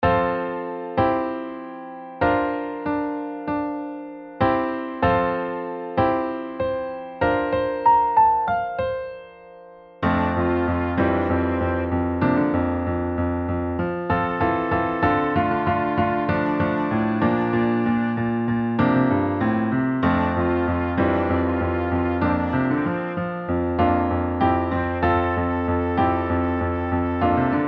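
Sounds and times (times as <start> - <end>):
piano soprano melody: 0.0 - 27.6.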